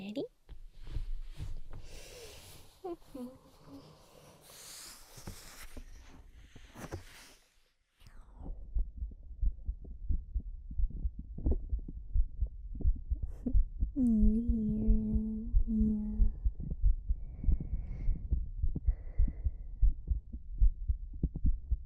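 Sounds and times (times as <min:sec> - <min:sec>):
soft rustling: 0:00.5 - 0:07.6
heartbeat thumping: 0:08.1 - 0:21.8.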